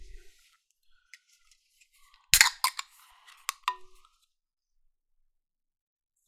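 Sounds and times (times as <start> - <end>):
blueberry-flavored basil seed drink being opened with a sharp crack: 2.4 - 2.8, 3.4 - 3.8.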